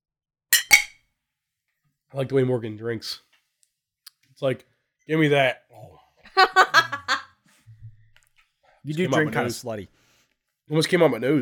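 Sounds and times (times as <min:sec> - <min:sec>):
glasses clinking in a toast: 0:00.6 - 0:01.0
speech: 0:02.1 - 0:03.3, 0:04.4 - 0:06.0, 0:08.8 - 0:10.0, 0:10.7 - 0:11.3
laughter: 0:06.3 - 0:07.3.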